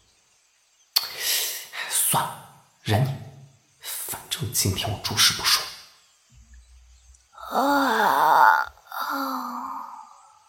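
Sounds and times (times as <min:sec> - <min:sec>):
speech: 0:02.1 - 0:03.3, 0:04.4 - 0:05.7, 0:07.6 - 0:08.7
child yawning and stretching on waking: 0:07.4 - 0:10.4.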